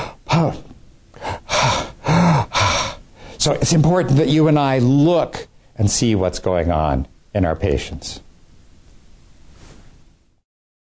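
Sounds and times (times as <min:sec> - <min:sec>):
person imitating a patient's labored heavy breathing: 0:00.0 - 0:03.4
speech: 0:00.4 - 0:00.7, 0:03.4 - 0:08.2.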